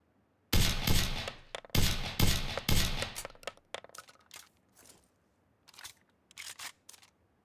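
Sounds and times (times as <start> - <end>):
suppressed shotgun shots: 0.6 - 3.5.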